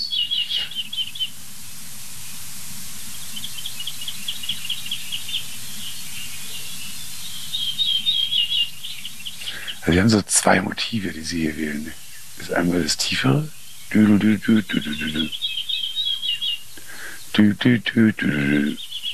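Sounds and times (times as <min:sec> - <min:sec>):
ortolan bunting singing ringing phrases of metallic notes: 0:00.0 - 0:01.4, 0:03.1 - 0:10.1, 0:10.9 - 0:19.1
speech: 0:09.8 - 0:15.5, 0:17.4 - 0:18.8.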